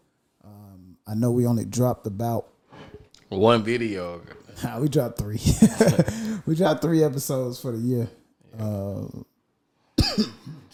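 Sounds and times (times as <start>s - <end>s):
speech: 1.1s - 2.5s, 3.3s - 9.3s, 10.2s - 10.5s
person coughing: 10.0s - 10.7s.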